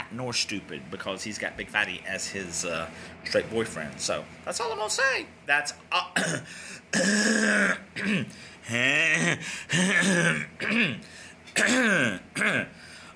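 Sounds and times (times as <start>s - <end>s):
speech: 0.1s - 12.9s
person clearing throat: 6.2s - 12.8s.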